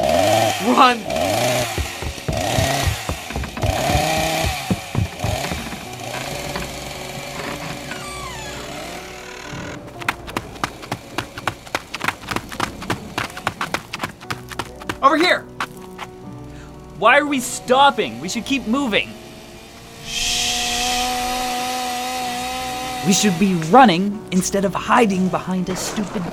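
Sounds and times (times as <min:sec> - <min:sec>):
chainsaw engine roaring and revving: 0:00.0 - 0:24.2
speech: 0:00.7 - 0:01.2, 0:17.1 - 0:19.1, 0:23.1 - 0:26.3
sharp quick clattering thuds: 0:01.4 - 0:08.2, 0:09.5 - 0:15.2.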